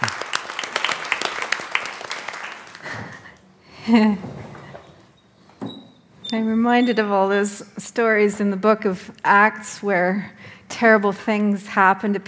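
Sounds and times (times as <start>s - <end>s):
audience applauding to welcome a guest preacher: 0.0s - 3.5s
speech: 3.9s - 4.3s, 6.3s - 12.2s.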